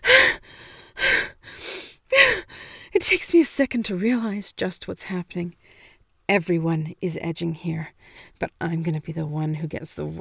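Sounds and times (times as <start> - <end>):
person gasping for breath: 0.0 - 2.9
speech: 3.0 - 5.7, 6.3 - 10.1.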